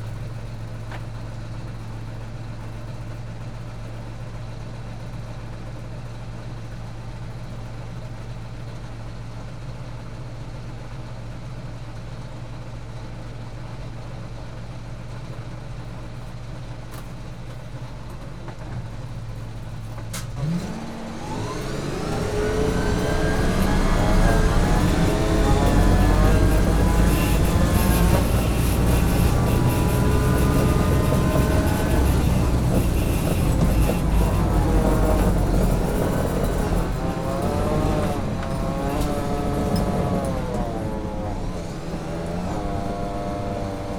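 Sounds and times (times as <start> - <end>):
armoured personnel carrier in warfare: 16.6 - 43.9.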